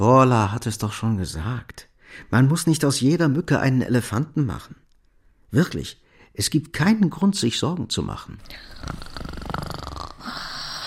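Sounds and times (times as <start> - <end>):
speech: 0.0 - 4.8, 5.5 - 9.4
person snoring in bed: 8.5 - 10.8.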